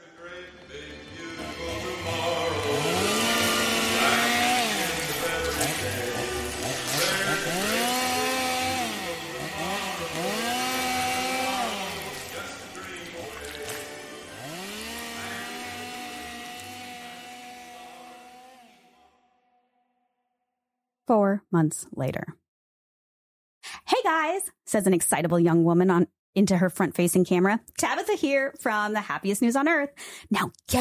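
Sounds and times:
chainsaw running and revving: 0.4s - 19.2s
speech: 21.5s - 22.4s, 24.7s - 30.7s.

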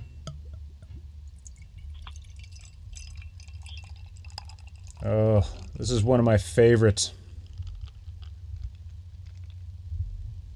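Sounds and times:
Doppelbock beer pouring into a glass: 1.3s - 6.0s
speech: 5.0s - 7.2s.

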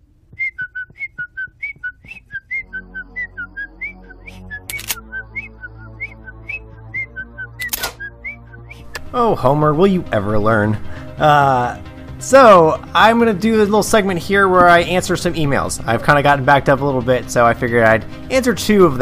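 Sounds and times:
person whistling a bouncy cheerful tune: 0.3s - 8.9s
steady bass-heavy musical backing: 2.6s - 19.0s
sharp clicks: 4.3s - 5.0s, 7.6s - 8.0s
speech: 9.1s - 19.0s.

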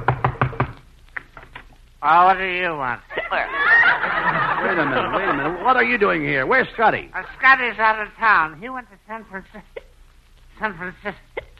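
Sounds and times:
firm knocking on a wooden door: 0.0s - 0.8s
speech: 2.0s - 9.8s, 10.6s - 11.5s
laughter: 3.1s - 7.6s.

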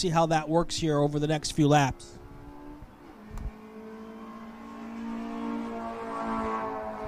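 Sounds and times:
speech: 0.0s - 2.2s
Corvette race car engine running at speed on a track: 0.6s - 7.0s.

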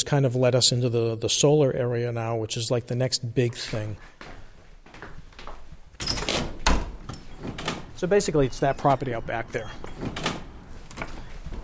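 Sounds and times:
speech: 0.0s - 4.4s, 8.0s - 10.2s
church back door knock-like clatter: 6.0s - 11.6s.

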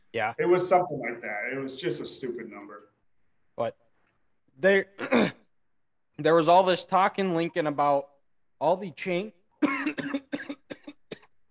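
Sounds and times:
speech: 0.1s - 3.0s, 3.6s - 3.8s, 4.6s - 5.4s, 6.2s - 10.2s
person coughing from coleslaw stuck in throat: 5.0s - 5.5s, 9.6s - 11.4s.

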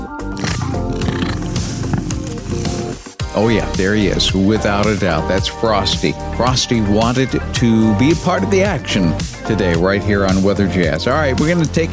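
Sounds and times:
cat purring against the microphone: 0.7s - 3.0s
speech: 3.4s - 11.9s.

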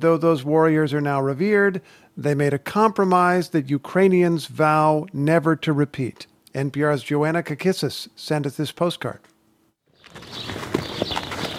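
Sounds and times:
speech: 0.0s - 9.3s
outdoor ambience: 0.0s - 11.5s
horse hooves clopping: 10.0s - 11.5s.

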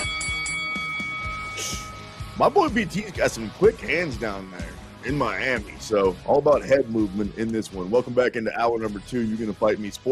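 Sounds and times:
boxing ring bell clanging: 0.0s - 2.3s
speech: 1.6s - 10.1s.

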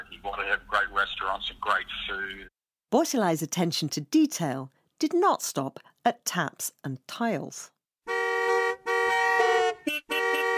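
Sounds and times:
speech: 0.1s - 7.8s
taxi car horns honking in long sustained blasts: 8.0s - 10.5s.

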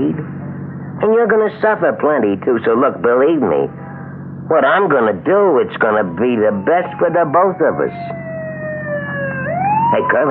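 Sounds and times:
speech: 0.0s - 0.4s, 1.0s - 3.8s, 4.5s - 8.2s, 9.9s - 10.2s
low engine rumble: 0.0s - 10.2s
police car siren wailing: 5.8s - 10.2s.

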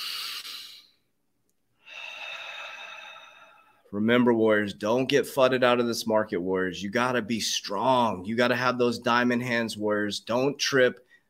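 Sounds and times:
deep breath: 0.0s - 1.1s, 1.8s - 3.9s
speech: 3.9s - 11.0s.

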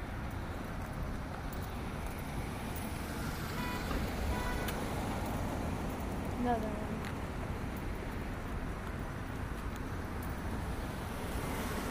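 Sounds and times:
car passing on road with engine rumble and tire noise: 0.0s - 11.8s
speech: 6.4s - 6.8s.

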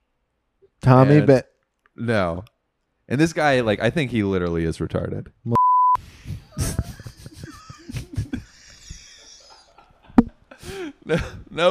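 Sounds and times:
speech: 0.8s - 2.5s, 3.1s - 5.6s, 11.1s - 11.6s
loud steady censor beep: 5.6s - 6.0s
laughter: 6.1s - 11.6s.

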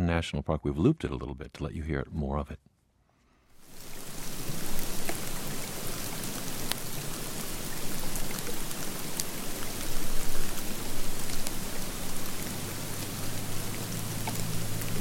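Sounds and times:
speech: 0.1s - 2.7s
heavy wet snowflakes falling onto a low-lying bush in a May snowstorm in Jackson Hole, Wyoming: 3.6s - 14.9s.

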